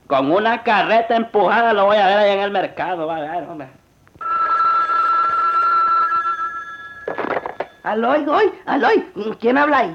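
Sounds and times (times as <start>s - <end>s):
speech: 0.1s - 3.8s, 7.8s - 9.9s
telephone ringing with an electronic trill: 4.2s - 8.3s.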